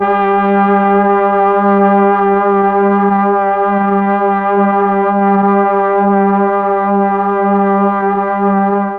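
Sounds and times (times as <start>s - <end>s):
mellotron G3 brass sound: 0.0s - 8.9s.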